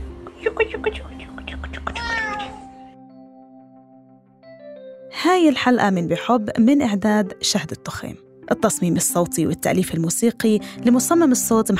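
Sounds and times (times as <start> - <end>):
speech: 0.8 - 2.1, 5.4 - 11.7
cat meowing: 1.9 - 2.8.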